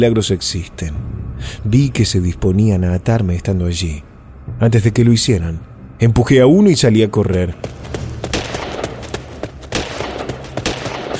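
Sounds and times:
speech: 0:00.0 - 0:08.0
dense noisy background: 0:00.0 - 0:11.1
burst of gunfire shots: 0:07.8 - 0:11.1.

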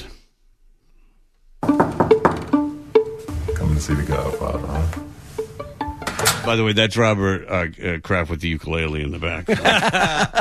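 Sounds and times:
knuckles knocking on a hotel room door: 0:01.6 - 0:02.6
sustained tonal notes: 0:01.6 - 0:06.8
speech: 0:03.8 - 0:05.1, 0:06.4 - 0:10.4
laughter: 0:09.4 - 0:10.4.

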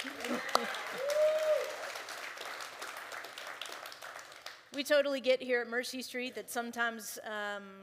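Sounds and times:
laughter: 0:00.0 - 0:01.0
audience applause: 0:00.0 - 0:04.6
speech: 0:04.8 - 0:07.8.

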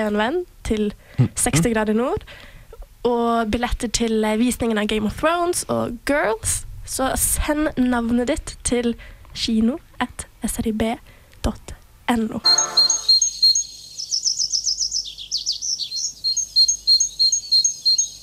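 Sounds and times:
speech: 0:00.0 - 0:13.1
great tit singing: 0:12.4 - 0:18.2.

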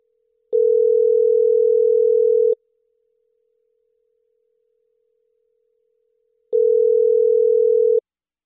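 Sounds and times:
outgoing phone call ringing tone: 0:00.6 - 0:02.6, 0:06.6 - 0:08.0.

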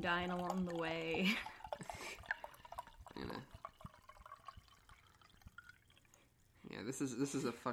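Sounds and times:
speech: 0:00.0 - 0:02.2, 0:06.7 - 0:07.7
wine dripping and trickling: 0:00.0 - 0:07.5
wine glugging as it is poured from a bottle: 0:00.4 - 0:06.2.

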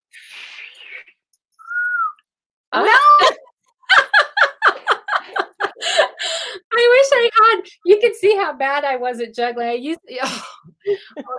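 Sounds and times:
person whistling a short clear note: 0:01.6 - 0:02.2
laughter: 0:02.8 - 0:06.4
person blowing a breathy rush of air: 0:05.7 - 0:06.7
speech: 0:08.1 - 0:11.3.

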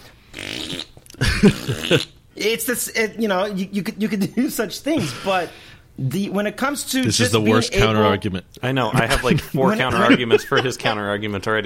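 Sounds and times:
toy's electronic fart sound effect: 0:00.3 - 0:02.2
speech: 0:01.4 - 0:11.6
laughter: 0:08.9 - 0:11.2.

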